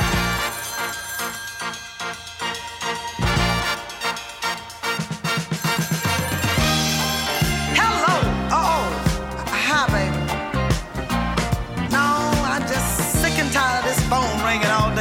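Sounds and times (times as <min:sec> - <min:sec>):
telephone bell ringing: 0:00.0 - 0:08.2
busy musical backing: 0:00.0 - 0:14.9.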